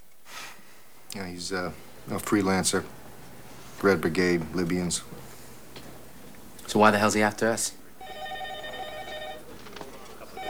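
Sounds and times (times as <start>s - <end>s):
faint noise: 0.0s - 10.4s
laughter: 1.0s - 10.4s
speech: 1.2s - 3.0s, 3.8s - 5.2s, 6.7s - 7.8s
telephone ringing with a warbling electronic tone: 1.2s - 10.4s.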